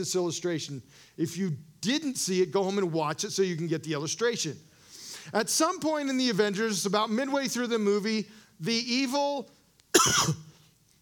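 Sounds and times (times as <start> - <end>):
speech: 0.0 - 10.4
throat-clearing cough: 9.9 - 10.5.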